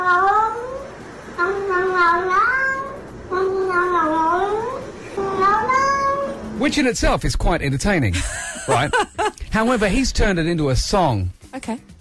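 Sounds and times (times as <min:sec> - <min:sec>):
faint hum: 0:00.0 - 0:11.9
cat meowing as its owner comes home: 0:01.8 - 0:03.0, 0:03.7 - 0:06.4
speech: 0:06.6 - 0:11.9
laughter: 0:08.1 - 0:10.0.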